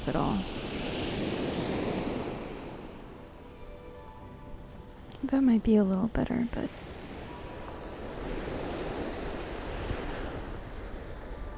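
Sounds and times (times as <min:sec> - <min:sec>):
speech: 0:00.0 - 0:00.6, 0:05.2 - 0:06.8
surf crashing on Chesil Beach: 0:00.0 - 0:03.6, 0:06.7 - 0:11.5
strong wind roaring across Chesil Beach through a wind muff: 0:00.0 - 0:11.5.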